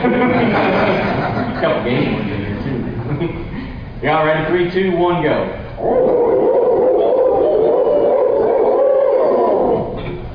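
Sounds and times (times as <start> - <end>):
speech: 0.0 - 0.7, 1.6 - 6.6
laughter: 0.0 - 2.3
people imitating owl hoots as turkey hunting locator calls: 5.8 - 10.1.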